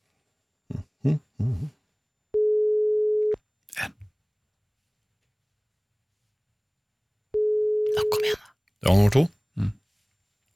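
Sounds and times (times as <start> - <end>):
speech: 1.0 - 1.8, 8.9 - 9.8
steady pure telephone ringing tone: 2.4 - 3.4, 7.4 - 8.2.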